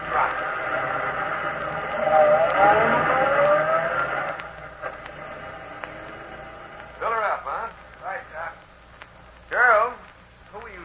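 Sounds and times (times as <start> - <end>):
car engine humming as the car pulls up and stops: 0.0 - 8.6.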